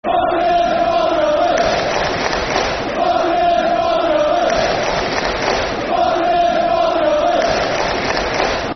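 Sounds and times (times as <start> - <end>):
football crowd chanting: 0.0 - 8.7.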